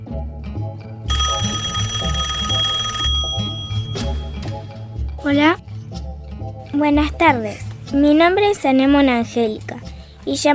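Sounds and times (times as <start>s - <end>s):
steady bed of music: 0.0s - 10.5s
telephone ringing for an incoming call: 1.1s - 4.9s
speech: 5.3s - 5.6s, 6.8s - 9.7s, 10.3s - 10.5s.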